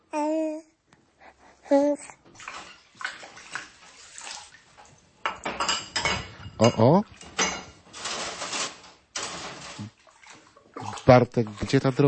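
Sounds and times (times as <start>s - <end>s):
child calling out: 0.1s - 0.7s
running water: 1.8s - 12.0s
dishes and cutlery clattering: 2.4s - 3.9s, 5.2s - 9.9s
speech: 6.6s - 7.2s, 11.1s - 12.0s.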